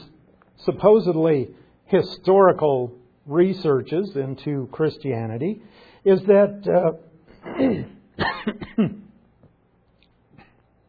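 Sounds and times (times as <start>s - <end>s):
speech: 0.7s - 9.0s
person coughing: 7.3s - 9.2s
throat clearing: 7.3s - 9.2s.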